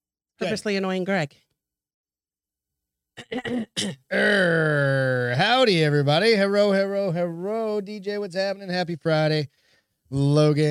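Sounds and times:
speech: 0.4s - 1.5s, 3.2s - 10.6s
throat clearing: 3.2s - 4.7s.

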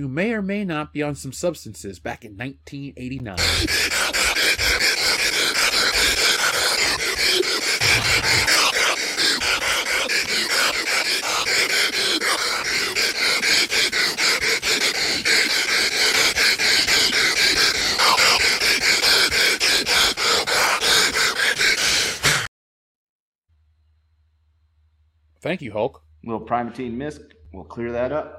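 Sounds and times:
speech: 0.0s - 4.8s, 25.5s - 28.3s
man gasping and panting into a microphone: 3.4s - 22.5s.

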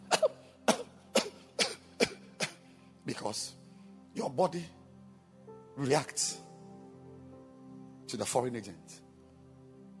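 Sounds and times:
person coughing: 0.0s - 2.6s
speech: 3.1s - 3.6s, 4.2s - 4.8s, 5.8s - 6.4s, 8.1s - 9.0s.

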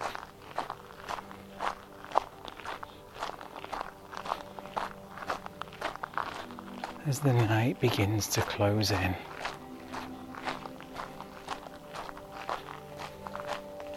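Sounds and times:
footsteps walking with a slight crunch on an evening walk: 0.0s - 13.9s
speech: 7.1s - 9.3s.

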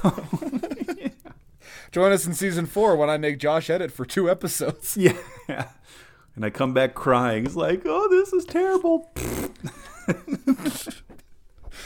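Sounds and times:
speech: 0.0s - 0.3s, 1.9s - 11.0s
laughter: 0.0s - 1.3s, 4.5s - 5.8s, 9.6s - 11.2s
cartoonish fart sound effect from a button: 9.1s - 9.8s.

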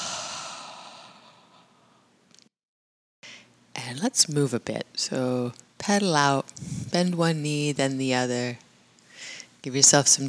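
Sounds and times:
person exhaling through the mouth during a yoga breathing cue: 0.0s - 1.9s
speech: 3.9s - 8.6s, 9.6s - 10.2s.

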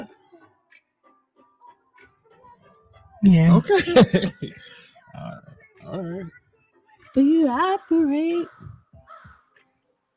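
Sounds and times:
speech: 3.2s - 6.4s, 7.1s - 8.6s
laughter: 3.6s - 4.8s
crow cawing outside: 7.9s - 9.6s.

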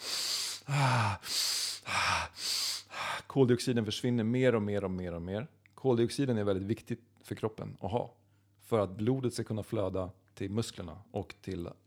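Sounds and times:
person demonstrating hyperventilation with rapid forceful breaths: 0.0s - 3.2s
speech: 3.4s - 11.8s.

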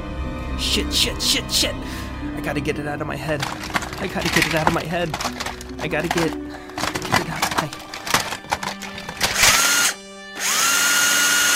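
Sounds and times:
speech: 0.6s - 6.5s, 7.6s - 7.8s
power drill whirring and revving: 6.8s - 11.5s.

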